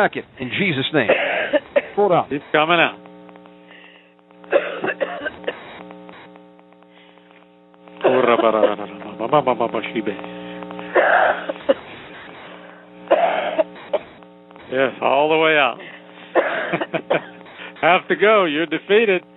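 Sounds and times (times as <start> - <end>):
speech: 0.0 - 3.0, 8.3 - 10.4, 14.7 - 15.9, 16.7 - 19.3
steady electrical hum: 0.0 - 19.3
person coughing and retching: 1.1 - 2.0, 4.5 - 5.6, 10.9 - 11.8, 13.1 - 14.1, 16.3 - 17.4.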